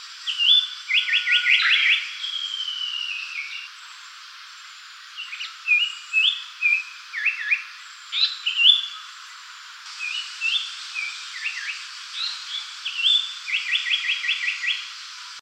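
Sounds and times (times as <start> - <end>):
Japanese paradise flycatcher singing: 0.2 - 3.7, 5.2 - 9.0, 10.0 - 15.0.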